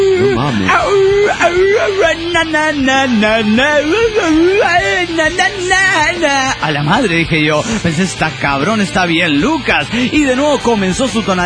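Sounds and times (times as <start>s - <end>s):
person imitating a howl: 0.0s - 6.3s
speech: 0.5s - 11.4s.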